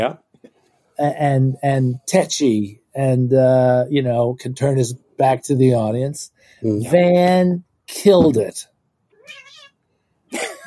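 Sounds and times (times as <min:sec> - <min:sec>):
speech: 0:00.0 - 0:00.2, 0:01.0 - 0:08.7
cat meowing in the room: 0:09.1 - 0:09.8
laughter: 0:10.3 - 0:10.6.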